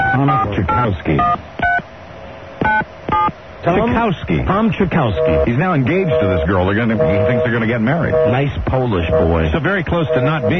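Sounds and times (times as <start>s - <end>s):
telephone keypad two-pitch beeps as a number is dialed: 0.0s - 1.8s, 2.6s - 3.3s, 5.2s - 8.4s, 10.0s - 10.5s
speech: 0.3s - 1.6s, 3.6s - 10.5s.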